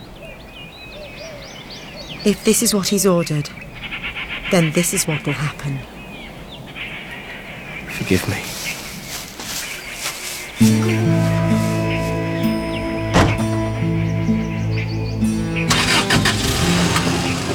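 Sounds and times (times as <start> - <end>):
speech: 2.2 - 3.7, 4.5 - 5.9, 8.1 - 8.5, 10.6 - 11.0
car engine starting, idling and driving away across an empty field: 10.6 - 17.5.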